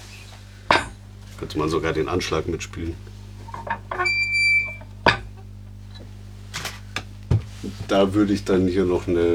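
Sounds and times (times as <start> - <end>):
speech: 1.4 - 3.1, 7.9 - 9.3
foley small garden gate creaking open: 3.5 - 5.4.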